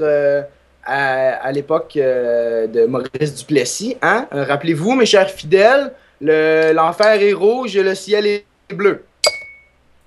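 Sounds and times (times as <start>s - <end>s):
speech: 0.0s - 9.1s
wine glasses clinking in a toast: 9.2s - 9.8s.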